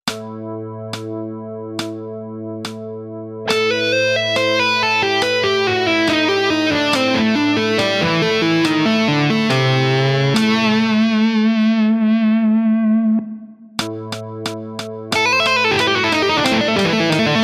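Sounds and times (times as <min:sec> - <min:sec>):
guitar tapping licks: 0:03.5 - 0:17.4.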